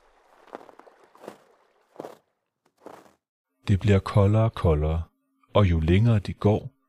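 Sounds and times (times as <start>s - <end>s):
crunchy footsteps along a stream: 0.0s - 3.3s
speech: 3.7s - 6.7s.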